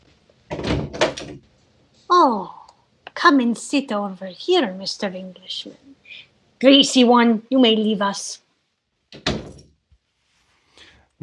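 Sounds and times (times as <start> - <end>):
door at the top of the stairs opening and closing: 0.5 - 1.5, 9.1 - 9.7
speech: 2.2 - 2.6, 3.2 - 5.8, 6.6 - 8.4, 9.1 - 9.4.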